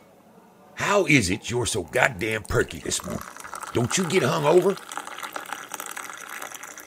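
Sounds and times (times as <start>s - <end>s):
speech: 0.9s - 4.9s
coffee being poured into a cup by a waitress: 2.0s - 6.8s.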